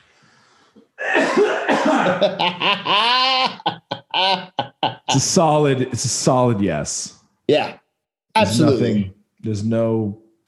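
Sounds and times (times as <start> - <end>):
person clearing throat against the microphone: 1.0 - 2.4
laughter: 1.9 - 5.4
speech: 2.0 - 7.8, 8.4 - 10.2.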